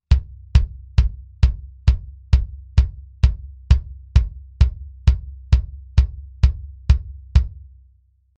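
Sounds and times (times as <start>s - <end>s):
solo dry bass drum hits recorded with M201TG microphone: 0.0s - 7.7s.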